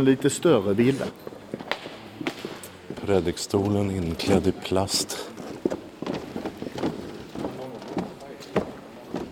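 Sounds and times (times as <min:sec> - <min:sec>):
speech: 0:00.0 - 0:01.6, 0:03.1 - 0:05.4
hollow footsteps in a reverberant church interior: 0:01.0 - 0:09.3.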